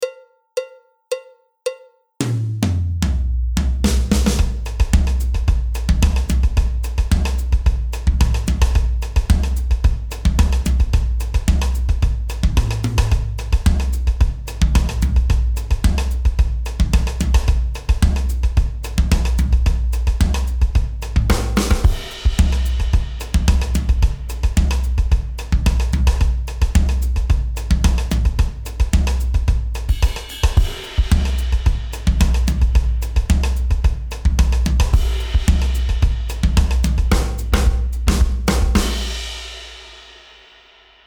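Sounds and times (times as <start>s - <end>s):
Brazilian samba drum variation: 2.2s - 41.0s.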